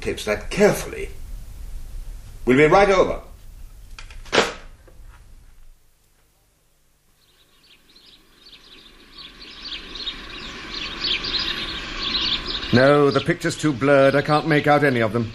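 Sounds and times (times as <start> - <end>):
speech: 0.0 - 1.2, 2.4 - 3.3, 12.7 - 15.3
sharp crack: 3.9 - 4.8
flock of birds chirping: 7.2 - 15.3.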